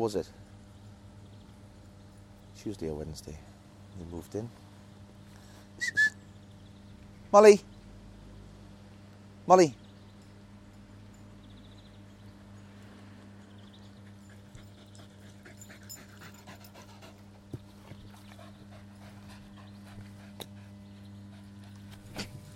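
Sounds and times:
speech: 0.0 - 0.5, 2.6 - 4.6, 5.8 - 6.0, 7.3 - 7.7, 9.5 - 9.8
steady low hum: 0.0 - 22.5
dog panting and slobbering: 13.8 - 22.5.

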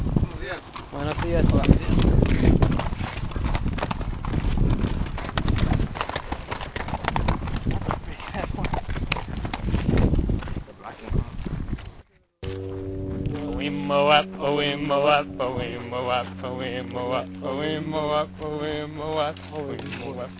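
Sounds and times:
horse hooves clip-clopping: 0.0 - 12.0, 19.2 - 20.3
speech: 0.5 - 2.6
indistinct voices murmuring: 12.4 - 20.3.

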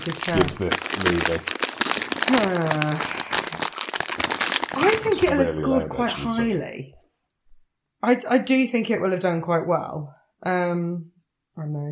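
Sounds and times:
speech: 0.0 - 1.6, 2.3 - 7.0, 8.0 - 11.8
sweet wrapper rustling: 0.0 - 5.6.

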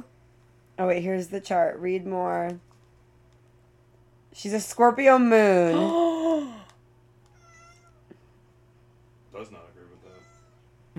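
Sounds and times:
speech: 0.8 - 2.7, 4.4 - 6.6
cat meowing: 7.3 - 8.0, 10.0 - 10.6.

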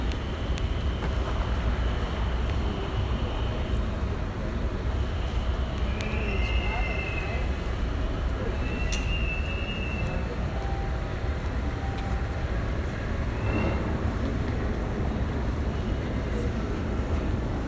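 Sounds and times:
airport tram train rumbling into the platform: 0.0 - 17.6
voices murmuring: 2.1 - 17.6.

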